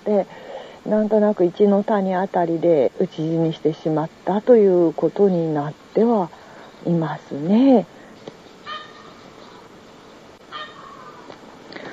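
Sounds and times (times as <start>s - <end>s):
outdoor noise: 0.0s - 11.9s
speech: 0.1s - 8.0s
wild peacock calling on an island: 8.4s - 11.6s.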